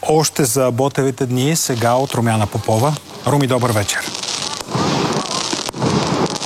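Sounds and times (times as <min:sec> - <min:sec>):
fireworks salutes crackling and rumbling during evening ceremony: 0:00.0 - 0:06.4
speech: 0:00.1 - 0:04.4
sharp firework burst: 0:01.5 - 0:06.4.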